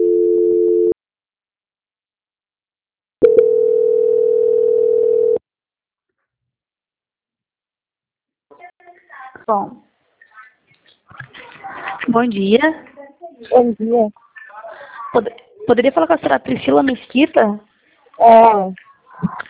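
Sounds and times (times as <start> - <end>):
telephone tones during a call transfer on a bank's phone line: 0.0 - 1.0, 3.2 - 5.4
speech: 9.5 - 9.9, 12.1 - 14.2, 15.1 - 19.4.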